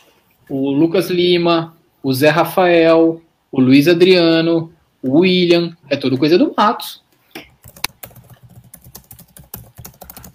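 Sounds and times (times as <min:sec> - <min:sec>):
speech: 0:00.5 - 0:07.0
keyboard typing with plastic key clicks: 0:07.4 - 0:10.3.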